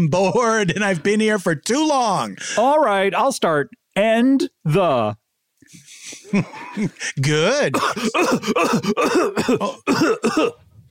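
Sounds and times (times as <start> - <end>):
speech: 0.0 - 10.6
laughter: 5.7 - 7.2
person coughing in a school classroom: 7.7 - 10.7.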